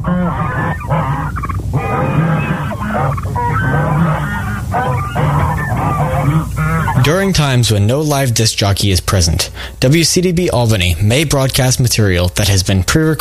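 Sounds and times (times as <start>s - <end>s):
flock of ducks quacking: 0.0s - 7.6s
flock of geese honking: 0.0s - 7.7s
speech: 7.1s - 13.1s.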